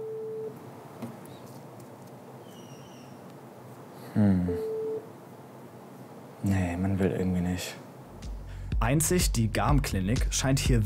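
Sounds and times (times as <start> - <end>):
telephone busy signal beeps: 0.0 - 0.5, 4.5 - 5.0
hissy noise: 0.0 - 10.2
speech: 4.2 - 4.7, 7.0 - 7.8, 8.9 - 10.8.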